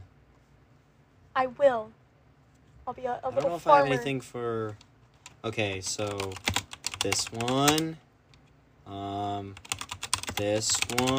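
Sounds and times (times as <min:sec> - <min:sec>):
speech: 0:01.4 - 0:02.0, 0:02.9 - 0:04.8, 0:05.4 - 0:08.0, 0:08.9 - 0:09.8, 0:10.4 - 0:11.1
computer keyboard typing: 0:05.2 - 0:07.9, 0:09.5 - 0:11.1.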